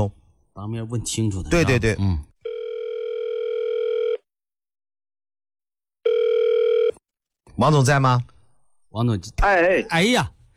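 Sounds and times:
speech: 0:00.0 - 0:02.3, 0:07.6 - 0:08.3, 0:08.9 - 0:10.4
telephone ringback tones on the line: 0:02.4 - 0:04.2, 0:06.0 - 0:07.0.

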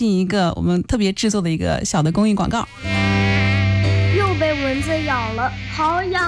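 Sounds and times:
speech: 0:00.0 - 0:03.3, 0:04.6 - 0:06.2
mosquito buzzing: 0:02.6 - 0:06.2.

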